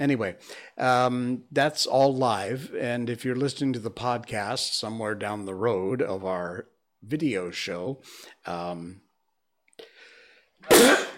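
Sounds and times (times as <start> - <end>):
speech: 0.0 - 9.0, 10.6 - 11.0
person sneezing live: 10.6 - 11.1.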